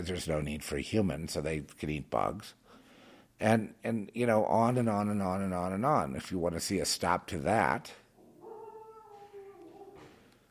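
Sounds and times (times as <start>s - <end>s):
speech: 0.0s - 2.6s, 3.4s - 8.0s
dog with drawn-out bark and howl-like cry: 8.2s - 10.3s.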